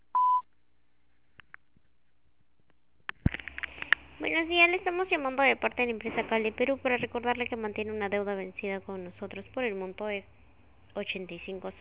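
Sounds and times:
voicemail beep signalling the start of a message recording: 0:00.1 - 0:00.4
faint clicks and rustles: 0:01.1 - 0:04.1
speech: 0:04.3 - 0:11.7.

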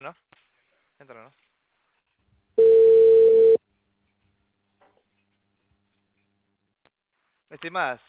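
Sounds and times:
speech: 0:00.0 - 0:00.4, 0:01.1 - 0:01.5, 0:07.5 - 0:08.0
telephone tone after a dropped call: 0:02.6 - 0:03.6.

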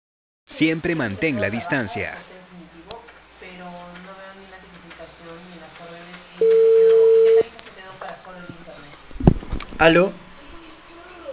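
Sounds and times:
speech: 0:00.6 - 0:02.3, 0:09.8 - 0:10.2
telephone busy tone after a dropped call: 0:06.4 - 0:07.5.

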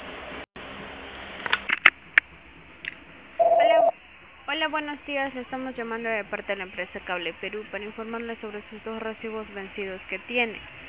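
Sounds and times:
voicemail beep tone: 0:03.4 - 0:04.0
speech: 0:04.6 - 0:10.8.

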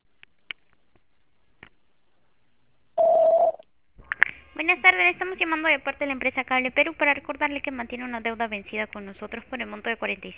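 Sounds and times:
single mid-pitched voicemail beep: 0:03.0 - 0:03.6
speech: 0:04.7 - 0:10.3.

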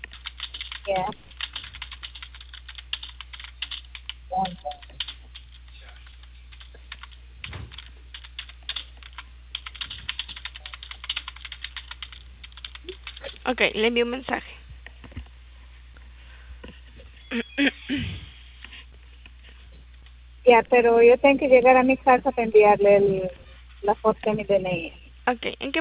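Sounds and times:
rapid typing on a computer keyboard: 0:00.0 - 0:13.5
speech: 0:00.9 - 0:01.3, 0:13.6 - 0:14.5, 0:20.5 - 0:25.7.

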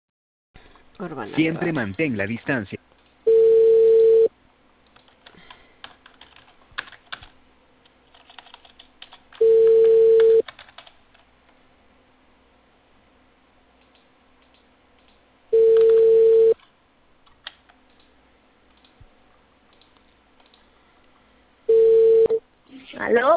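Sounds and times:
speech: 0:01.0 - 0:02.8
ringing tone of an outgoing telephone call: 0:03.3 - 0:04.3, 0:09.4 - 0:10.4, 0:15.5 - 0:16.6, 0:21.7 - 0:22.4.

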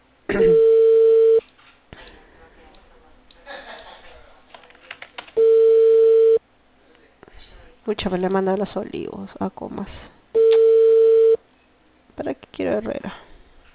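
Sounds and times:
speech: 0:00.3 - 0:00.7, 0:07.9 - 0:10.2, 0:12.2 - 0:13.2
mobile phone call tone beep: 0:00.4 - 0:01.4, 0:05.4 - 0:06.4, 0:10.4 - 0:11.4.

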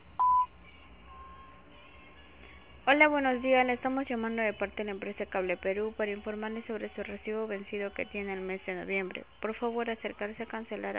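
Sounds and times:
voicemail beep: 0:00.2 - 0:00.5
speech: 0:02.9 - 0:10.9.

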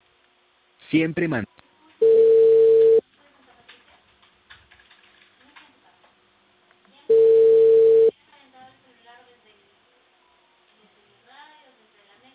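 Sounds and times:
faint noise: 0:00.0 - 0:12.3
speech: 0:00.9 - 0:01.6
telephone ringback tone on an outgoing call placed from Peru: 0:02.0 - 0:03.0, 0:07.1 - 0:08.1.

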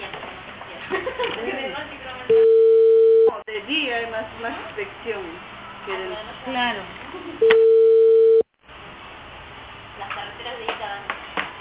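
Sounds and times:
speech: 0:01.2 - 0:02.5, 0:03.7 - 0:07.8
telephone ringing tone before transfer to voicemail: 0:02.3 - 0:03.3, 0:07.4 - 0:08.5.

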